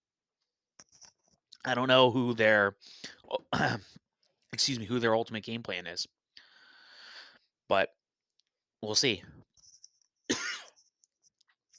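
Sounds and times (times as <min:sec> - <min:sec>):
speech: 0:01.6 - 0:04.0, 0:04.6 - 0:06.2, 0:07.7 - 0:08.0, 0:08.8 - 0:09.5
person breathing: 0:02.8 - 0:03.2, 0:06.4 - 0:07.5
person with an itchy throat coughing: 0:03.6 - 0:03.9, 0:10.3 - 0:10.8.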